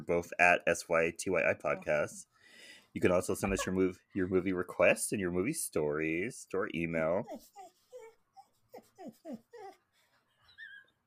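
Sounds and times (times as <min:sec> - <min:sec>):
speech: 0:00.0 - 0:02.3, 0:02.9 - 0:07.7, 0:09.0 - 0:09.8
dog whimpering: 0:07.2 - 0:11.0.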